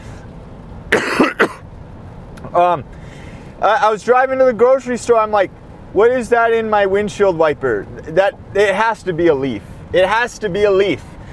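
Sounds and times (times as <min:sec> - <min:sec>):
person coughing: 0:00.9 - 0:01.6
speech: 0:02.6 - 0:03.0, 0:03.6 - 0:11.1.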